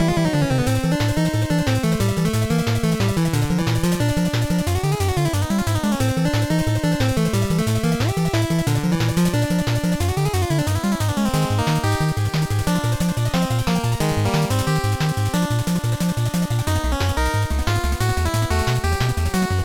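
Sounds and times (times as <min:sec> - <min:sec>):
RPG battle theme music: 0:00.0 - 0:19.6.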